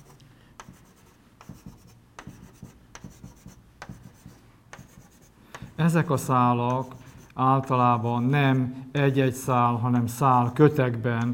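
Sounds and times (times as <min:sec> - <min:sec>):
pen or marker drawing on a surface: 0:00.0 - 0:05.3
speech: 0:05.8 - 0:11.3.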